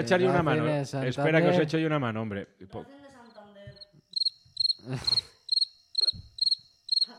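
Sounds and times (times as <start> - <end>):
speech: 0.0 - 3.0, 4.8 - 5.3
cricket chirping in quick trilled bursts: 3.2 - 7.1.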